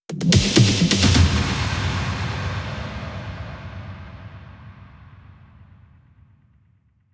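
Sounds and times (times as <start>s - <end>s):
big drum fills: 0.1s - 5.3s.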